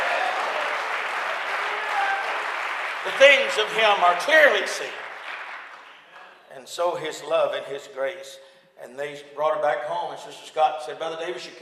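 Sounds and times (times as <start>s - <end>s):
audience at a church service clapping hands: 0.0s - 6.5s
speech: 3.0s - 5.0s, 6.6s - 11.6s.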